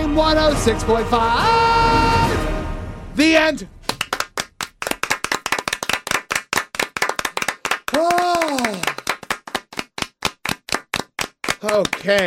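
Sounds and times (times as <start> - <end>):
speech: 0.2 - 2.5, 3.2 - 3.8, 11.6 - 12.2
people clapping rhythmically: 3.8 - 12.2
person whooping: 7.9 - 9.0.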